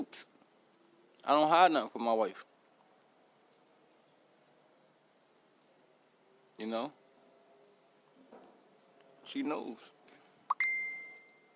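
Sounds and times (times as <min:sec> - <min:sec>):
speech: 0:00.0 - 0:00.3, 0:01.2 - 0:02.5, 0:06.6 - 0:07.0, 0:09.3 - 0:10.0
social media group post notification ding on a device: 0:10.5 - 0:11.5.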